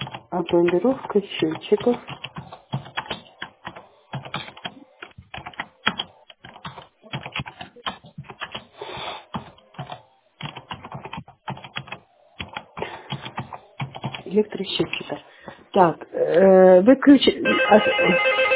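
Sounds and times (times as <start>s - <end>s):
computer keyboard typing: 0.0s - 15.2s
speech: 0.4s - 2.3s, 15.8s - 18.5s.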